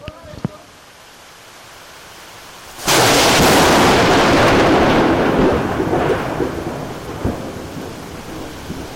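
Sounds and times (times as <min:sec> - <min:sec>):
steady hiss like rain: 0:00.0 - 0:08.9
loud crack of thunder rolling into a heavy rumble: 0:02.8 - 0:08.9.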